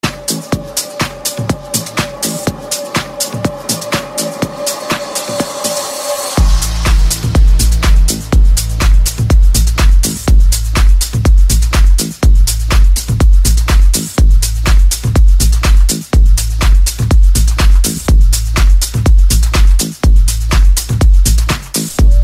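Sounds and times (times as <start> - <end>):
deep electro ringtone: 0.1 - 21.4, 22.0 - 22.2.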